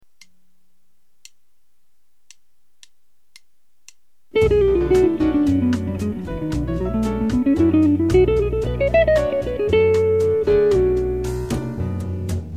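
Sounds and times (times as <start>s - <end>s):
smooth chromatic guitar lick: 4.4s - 12.3s.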